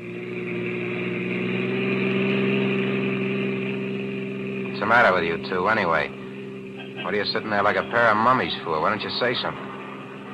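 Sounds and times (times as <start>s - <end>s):
car engine humming: 0.0s - 10.3s
speech: 4.9s - 6.2s, 7.1s - 9.7s
laughter: 6.6s - 10.3s.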